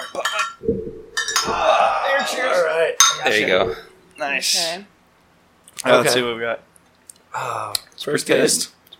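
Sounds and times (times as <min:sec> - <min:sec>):
several glasses clinking together in a toast: 0:00.2 - 0:02.4
speech: 0:02.5 - 0:04.9, 0:05.8 - 0:06.7, 0:07.3 - 0:08.8.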